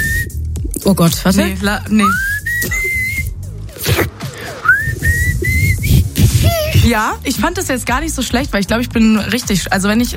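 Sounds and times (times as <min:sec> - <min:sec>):
person whistling through their lips: 0:00.0 - 0:00.4, 0:02.0 - 0:03.4, 0:04.6 - 0:06.7
speech: 0:00.8 - 0:02.8, 0:06.9 - 0:10.1.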